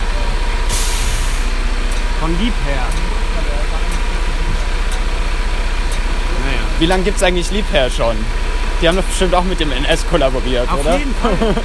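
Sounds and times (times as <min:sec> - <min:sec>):
white cement mixer truck deep engine drone in Berlin: 0:00.0 - 0:11.6
cement mixer truck air brakes hissing: 0:00.6 - 0:01.6
speech: 0:02.3 - 0:03.1, 0:06.8 - 0:11.6
laughter: 0:10.5 - 0:11.6.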